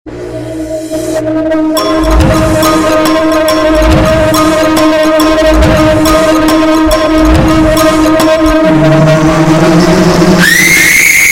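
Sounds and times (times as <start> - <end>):
terror SMS message tone: 0.1 - 11.2.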